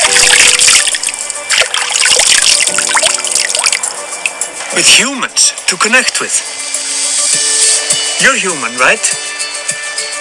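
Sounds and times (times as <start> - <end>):
water trickling and splashing over stones: 0.0 - 4.0
speech: 4.8 - 6.5, 8.2 - 9.2.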